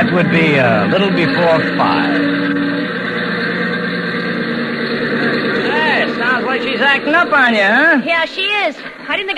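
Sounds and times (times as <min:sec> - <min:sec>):
speech: 0:00.0 - 0:02.7, 0:05.2 - 0:09.3
small airplane engine running rough from a thinned-out fuel mixture while taxiing to the hangar: 0:00.0 - 0:09.1.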